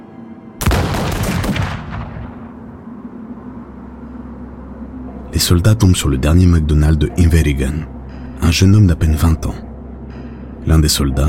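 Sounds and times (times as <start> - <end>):
musket gunfire in the mountains of the Highlands: 0.6 - 2.6
rumbling echo of musket gunfire against mountains: 0.6 - 3.2
speech: 5.4 - 9.7, 10.6 - 11.2.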